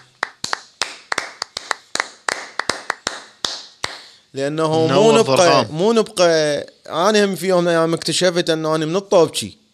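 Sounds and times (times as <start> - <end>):
sharp hand claps: 0.0 - 4.2
speech: 4.3 - 9.6.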